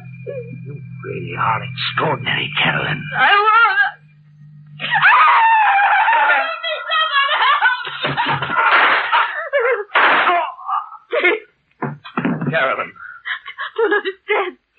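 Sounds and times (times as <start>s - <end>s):
speech: 1.4s - 3.5s
woman screaming in terror: 4.8s - 7.7s
laughter: 4.8s - 10.0s, 11.1s - 14.5s.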